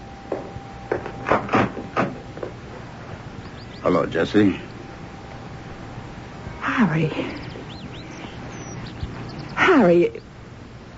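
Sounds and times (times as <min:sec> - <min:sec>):
wooden door being opened with latch rattling: 0:00.9 - 0:02.6
speech: 0:03.9 - 0:04.7, 0:06.8 - 0:07.4, 0:09.7 - 0:10.3.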